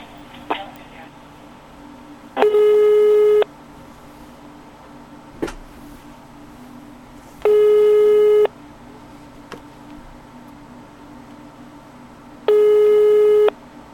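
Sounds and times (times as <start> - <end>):
faint hum: 0.0 - 13.9
telephone ringback tone while a call connects: 2.4 - 3.5, 7.5 - 8.5, 12.5 - 13.5.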